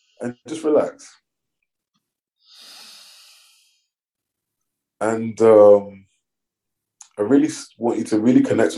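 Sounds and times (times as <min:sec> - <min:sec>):
speech: 0:00.2 - 0:01.2, 0:05.0 - 0:06.0, 0:07.2 - 0:08.7
deep breath during a guided relaxation exercise: 0:02.4 - 0:04.0.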